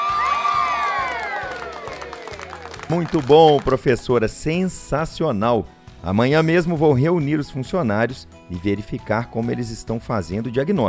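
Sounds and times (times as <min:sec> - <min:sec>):
crowd cheering and whooping: 0:00.0 - 0:03.7
applause: 0:00.0 - 0:04.0
speech: 0:02.9 - 0:10.8.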